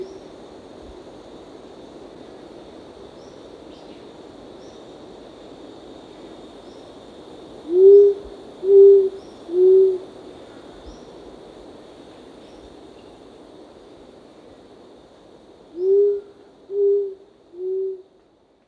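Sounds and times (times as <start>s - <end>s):
short-toed coucal hooting: 7.7s - 10.1s, 15.8s - 18.1s.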